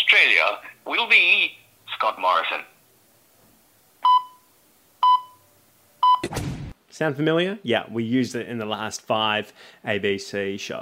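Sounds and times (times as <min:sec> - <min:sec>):
speech: 0:00.1 - 0:02.7, 0:07.0 - 0:10.8
Australian telephone speaking clock time pips: 0:04.0 - 0:05.4, 0:06.0 - 0:06.3.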